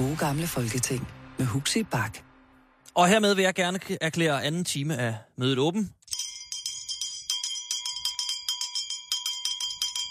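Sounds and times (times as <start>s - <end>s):
speech: 0.0s - 2.3s, 2.9s - 6.0s
handbell rung to declare a meeting session open: 6.1s - 10.0s.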